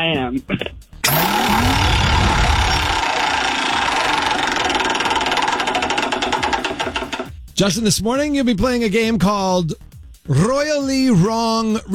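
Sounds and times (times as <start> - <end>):
speech: 0.0 - 1.9, 7.6 - 11.9
prize wheel spinning with rapid ticking: 1.0 - 7.3.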